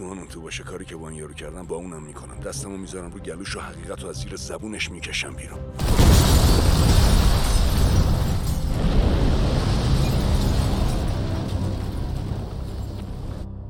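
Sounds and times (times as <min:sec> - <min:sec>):
speech: 0:00.0 - 0:07.1
massive explosion with a deep heavy rumble: 0:05.8 - 0:13.0.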